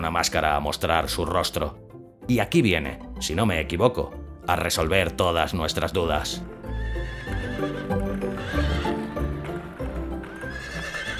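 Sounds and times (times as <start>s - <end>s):
speech: 0.0s - 8.0s
hooves of two horses clopping on pavement: 5.4s - 11.1s
carriage wheels rolling on pavement: 6.5s - 11.1s
horse whinnying: 6.5s - 11.1s.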